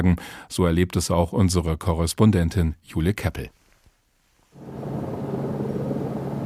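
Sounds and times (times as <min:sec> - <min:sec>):
speech: 0:00.0 - 0:03.6
helicopter heavy rumbling drone overhead: 0:04.6 - 0:06.4.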